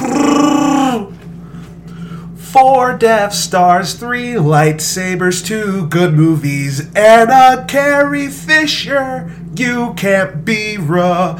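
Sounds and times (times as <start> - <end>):
Wookiee-style raspy growl sound effect: 0.0 - 1.1
speech: 2.5 - 11.3.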